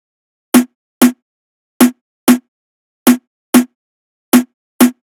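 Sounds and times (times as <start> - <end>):
95 BPM hip hop drum loop with snare: 0.5 - 1.1, 3.1 - 3.7, 4.3 - 4.9.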